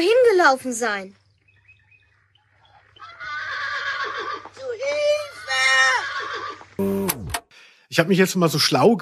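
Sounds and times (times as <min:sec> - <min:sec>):
speech: 0:00.0 - 0:01.2, 0:06.8 - 0:07.1, 0:07.9 - 0:09.0
pony whinnying: 0:02.7 - 0:06.8.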